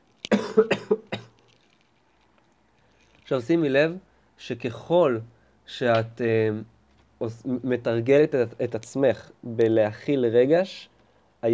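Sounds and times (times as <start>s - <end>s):
person coughing in short raspy bursts: 0.3s - 1.4s
speech: 0.6s - 1.2s, 3.3s - 11.5s.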